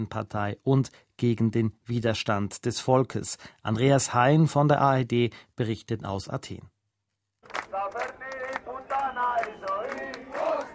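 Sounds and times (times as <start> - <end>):
speech: 0.0 - 6.7, 7.7 - 8.3
large crowd of demonstrators shouting and roaring: 7.6 - 10.7.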